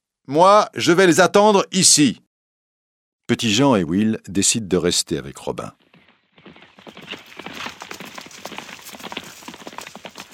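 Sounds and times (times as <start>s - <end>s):
speech: 0.3s - 2.3s, 3.3s - 5.8s
horse hooves clip-clopping: 5.8s - 10.3s.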